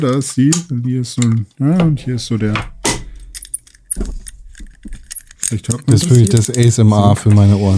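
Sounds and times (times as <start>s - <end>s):
speech: 0.0s - 2.7s, 5.5s - 7.7s
jangling and tapping: 3.1s - 6.7s
small lockable focus lock box clinking and rattling: 3.2s - 6.8s.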